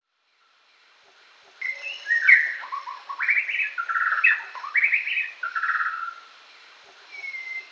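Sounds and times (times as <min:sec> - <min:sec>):
White-rumped shama song: 0:01.6 - 0:06.2, 0:07.0 - 0:07.6.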